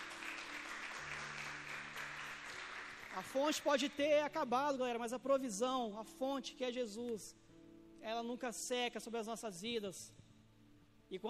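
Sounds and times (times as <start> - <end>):
congregation applauding: 0.0 - 4.1
speech: 3.2 - 7.4, 8.0 - 10.2, 11.1 - 11.2.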